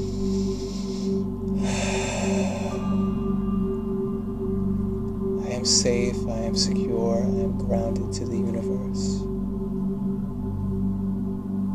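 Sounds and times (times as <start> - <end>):
deep breath during a guided chakra meditation: 0.0 - 4.5
loud low musical drone: 0.0 - 11.7
speech: 5.6 - 9.2.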